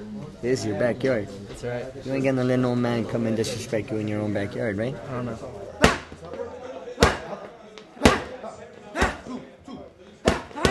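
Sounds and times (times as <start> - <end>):
voices murmuring: 0.0 - 10.6
speech: 0.4 - 5.6
boxing gloves punching padded coach's mitts: 5.8 - 6.4, 7.0 - 7.4, 8.0 - 8.4, 9.0 - 9.3, 10.2 - 10.6.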